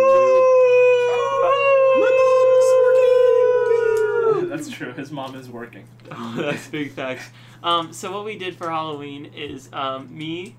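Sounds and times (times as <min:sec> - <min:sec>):
person howling like a wolf: 0:00.0 - 0:04.7
faint hum: 0:00.0 - 0:10.5
speech: 0:05.1 - 0:10.5.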